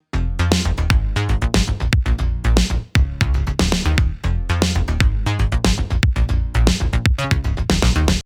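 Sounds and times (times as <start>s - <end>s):
bass: 0.0s - 8.2s
drums: 0.4s - 8.2s.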